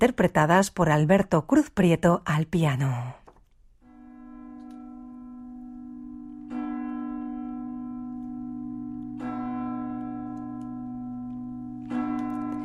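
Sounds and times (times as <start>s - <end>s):
speech: 0.0s - 3.2s
church bells ringing: 3.8s - 12.6s.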